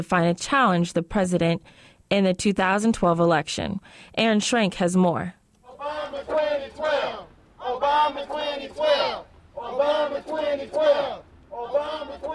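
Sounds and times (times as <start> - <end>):
speech: 0.0 - 5.4
crowd of demonstrators chanting on a sidewalk: 5.6 - 12.3.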